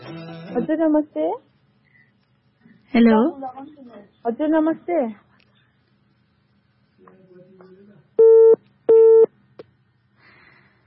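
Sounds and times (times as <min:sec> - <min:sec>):
speech: 0:00.5 - 0:01.5, 0:02.9 - 0:05.2
telephone busy tone after the caller hung up: 0:08.2 - 0:09.3.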